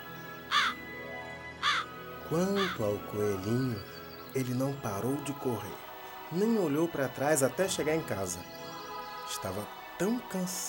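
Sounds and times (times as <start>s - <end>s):
crows cawing: 0.5s - 0.8s, 1.6s - 3.0s
speech: 2.3s - 8.6s, 9.3s - 10.6s.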